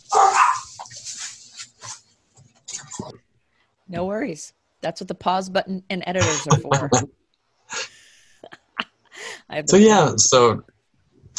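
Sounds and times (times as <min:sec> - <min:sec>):
puppy and dog barking at a delivery person: 0:00.0 - 0:01.2
dog whimpering: 0:00.1 - 0:00.8, 0:06.2 - 0:07.0
speech: 0:03.9 - 0:07.2, 0:09.5 - 0:10.7
laughter: 0:06.2 - 0:07.1, 0:09.7 - 0:10.6.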